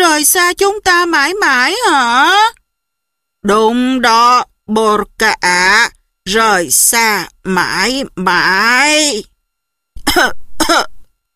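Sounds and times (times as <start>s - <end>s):
speech: 0.2s - 2.6s, 3.4s - 9.3s, 10.0s - 10.9s
old man clearing his throat and coughing into his fist: 10.0s - 11.0s.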